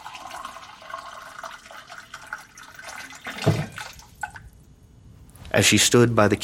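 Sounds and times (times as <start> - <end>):
water running from a tap into a glass: 0.0 - 4.4
speech: 5.6 - 6.4.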